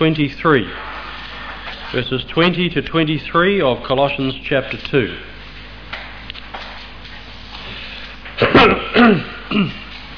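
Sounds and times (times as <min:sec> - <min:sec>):
speech: 0:00.0 - 0:00.9, 0:01.9 - 0:05.3, 0:09.0 - 0:09.8
person with a chest cough coughing and clearing throat: 0:08.4 - 0:10.0.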